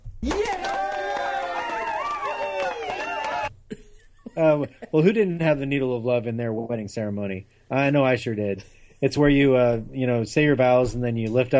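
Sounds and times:
speech: 0:00.2 - 0:00.8, 0:04.4 - 0:11.5
crowd yelling and cheering: 0:00.2 - 0:03.5
laughter: 0:02.7 - 0:05.5.

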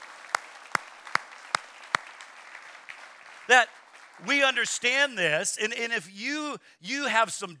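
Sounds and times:
congregation clapping in unison: 0:00.0 - 0:04.9
speech: 0:03.5 - 0:07.5.

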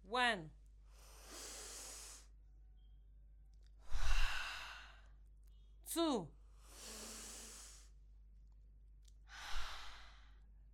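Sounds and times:
speech: 0:00.1 - 0:00.6, 0:06.0 - 0:06.4
slow breath in through the nose and out through the mouth: 0:00.8 - 0:02.4, 0:03.7 - 0:05.3, 0:06.4 - 0:08.1, 0:09.2 - 0:10.7.

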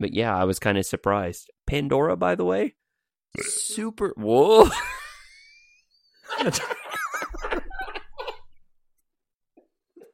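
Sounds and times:
speech: 0:00.0 - 0:05.0, 0:06.3 - 0:06.9
person holding back a burp with squeaky choked bursts: 0:03.4 - 0:03.8
laughter: 0:06.2 - 0:08.6.

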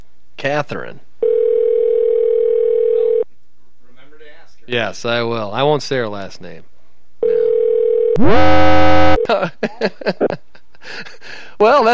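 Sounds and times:
speech: 0:00.4 - 0:01.1, 0:04.7 - 0:06.7, 0:08.2 - 0:11.9
telephone ring tone on outgoing call: 0:01.2 - 0:03.2, 0:07.2 - 0:09.3
loud harsh phone line tone: 0:08.2 - 0:09.3
laughter: 0:09.3 - 0:11.2.

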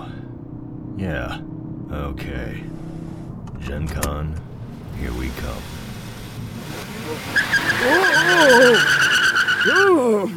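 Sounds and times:
speech: 0:01.0 - 0:02.9, 0:03.6 - 0:05.8, 0:06.7 - 0:10.3
car tires squealing while speeding away: 0:06.1 - 0:10.3.

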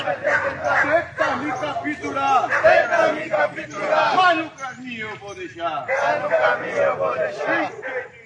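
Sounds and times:
several dogs barking excitedly: 0:00.0 - 0:04.2, 0:05.8 - 0:08.2
group of people shouting or chanting together: 0:00.0 - 0:04.6, 0:05.8 - 0:08.2.

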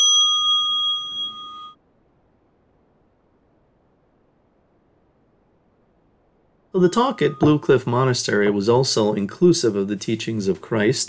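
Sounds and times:
mindfulness bell struck and ringing: 0:00.0 - 0:01.8, 0:06.8 - 0:08.1
speech: 0:06.8 - 0:11.0.

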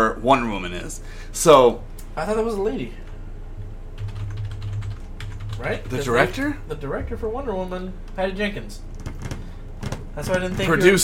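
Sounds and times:
low steady hum: 0:00.0 - 0:11.0
speech: 0:00.2 - 0:03.0, 0:05.6 - 0:08.9, 0:10.2 - 0:11.0
typing on a computer keyboard: 0:04.0 - 0:06.0, 0:09.0 - 0:10.0.

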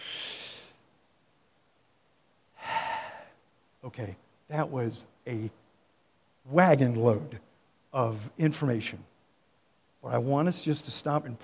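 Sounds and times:
church congregation drawing a deep breath and exhaling: 0:00.0 - 0:00.8, 0:02.6 - 0:03.4
speech: 0:03.8 - 0:05.6, 0:06.4 - 0:09.1, 0:10.0 - 0:11.4.

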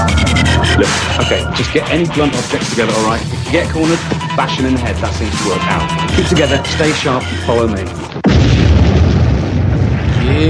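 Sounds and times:
speech: 0:00.8 - 0:08.6, 0:10.3 - 0:10.4
explosion rumble: 0:08.0 - 0:10.4.

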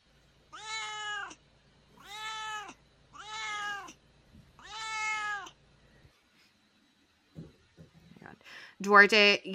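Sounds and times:
cat meowing: 0:00.5 - 0:01.4, 0:02.0 - 0:04.0, 0:04.6 - 0:05.6
speech: 0:08.8 - 0:09.5.

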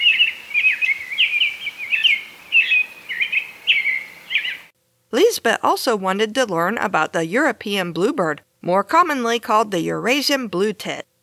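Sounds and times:
American robin singing: 0:00.0 - 0:04.7
speech: 0:05.1 - 0:11.1.

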